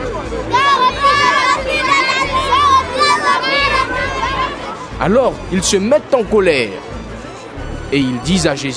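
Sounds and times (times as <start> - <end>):
crowd of children shouting and calling out in a temple: 0.3 - 4.9
speech: 5.0 - 7.0, 7.9 - 8.7.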